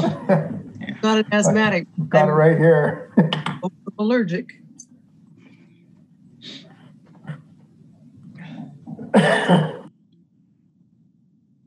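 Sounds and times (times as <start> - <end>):
person coughing: 0.0 - 0.6, 8.4 - 9.9
laughter: 0.0 - 3.6
speech: 0.3 - 4.6, 9.1 - 9.8.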